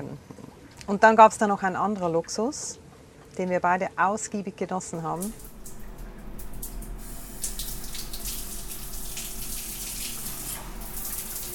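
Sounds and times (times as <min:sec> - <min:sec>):
speech: 0:00.9 - 0:02.8, 0:03.4 - 0:05.5
water running from a shower: 0:05.0 - 0:11.5.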